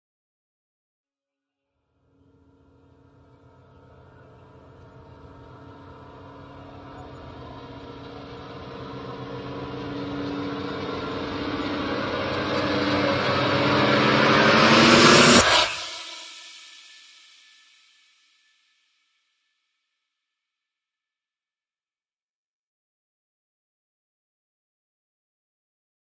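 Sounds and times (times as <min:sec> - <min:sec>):
expander synth risers: 0:02.9 - 0:16.3.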